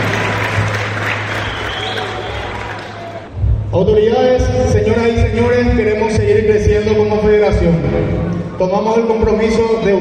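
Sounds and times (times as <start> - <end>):
audience applause at a futsal federation event: 0.0 - 3.3
speech: 3.8 - 9.9.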